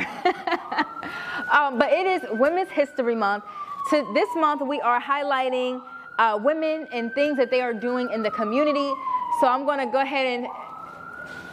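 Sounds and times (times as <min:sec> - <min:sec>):
person laughing: 0:00.0 - 0:01.4
emergency siren passing outside: 0:00.0 - 0:11.5
speech: 0:01.5 - 0:10.7.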